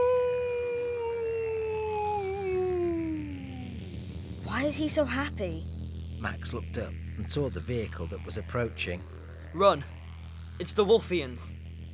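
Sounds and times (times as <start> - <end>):
long sustained howl gliding downward in pitch: 0.0 - 3.8
low rumbling background: 0.0 - 11.9
speech: 4.7 - 9.9, 10.6 - 11.6.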